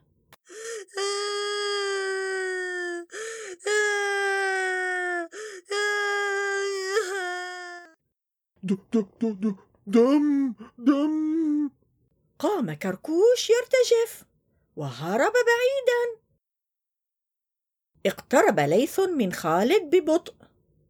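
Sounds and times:
child wailing in long loud cries: 0.4s - 8.0s
speech: 8.7s - 11.5s, 12.4s - 16.2s, 18.0s - 20.4s.

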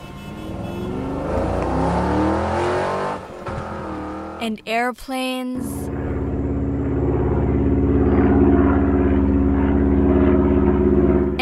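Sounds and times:
car engine revving: 0.0s - 4.5s, 5.6s - 11.4s
speech: 4.4s - 6.0s.

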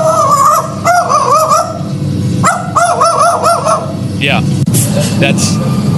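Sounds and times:
pet magpie imitating the bark of a pit bull: 0.0s - 4.0s
speech: 5.2s - 5.8s.

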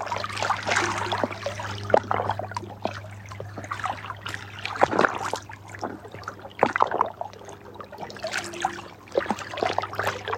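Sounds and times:
constant low hum: 0.0s - 10.3s
water flowing and trickling: 0.0s - 10.3s.

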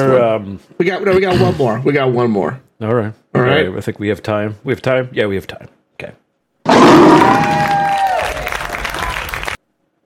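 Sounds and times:
speech: 0.0s - 8.2s
lion roaring: 6.7s - 7.8s.

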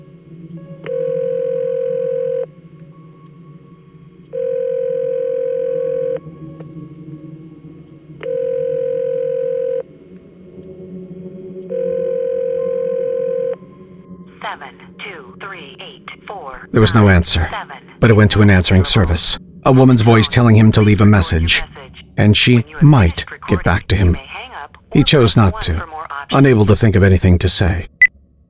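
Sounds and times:
low rumble: 0.0s - 28.4s
telephone ringing tones as a number is dialled: 0.8s - 2.5s, 4.3s - 6.2s, 8.2s - 9.9s, 11.7s - 13.6s
speech: 16.8s - 24.4s, 25.0s - 27.9s.

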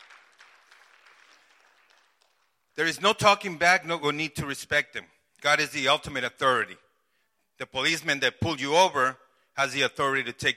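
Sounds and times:
church audience clapping: 0.0s - 2.8s
speech: 2.8s - 6.8s, 7.6s - 10.5s.

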